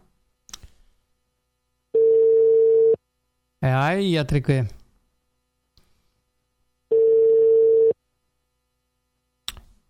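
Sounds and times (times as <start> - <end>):
telephone ringing on an incoming call: 2.0 - 3.0, 6.9 - 8.0
speech: 3.6 - 4.8.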